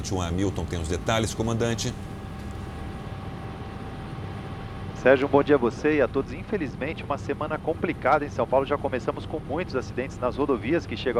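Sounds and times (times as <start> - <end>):
speech: 0.0 - 2.2, 5.0 - 11.1
TV news helicopter engine and rotor roaring: 0.0 - 6.5.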